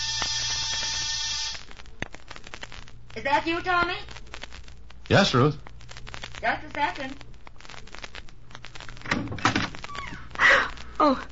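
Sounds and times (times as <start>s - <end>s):
apartment door buzzer ringing: 0.0s - 1.6s
speech: 3.2s - 4.1s, 5.1s - 5.6s, 6.4s - 7.3s, 11.0s - 11.3s.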